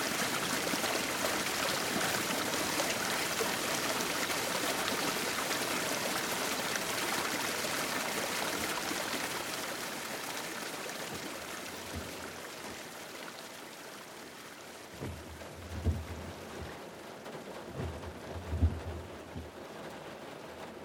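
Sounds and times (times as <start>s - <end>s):
heavy rain shower: 0.0s - 20.8s
low thuds: 15.0s - 16.8s.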